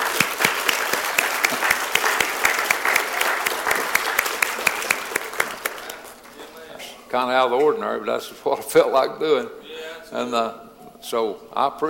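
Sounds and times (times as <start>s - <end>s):
audience applause: 0.0s - 6.4s
speech: 7.1s - 11.8s.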